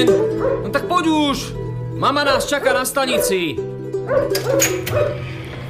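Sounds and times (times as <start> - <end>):
dog barking at a train station: 0.2 - 0.7, 3.1 - 5.3
speech: 0.6 - 5.4.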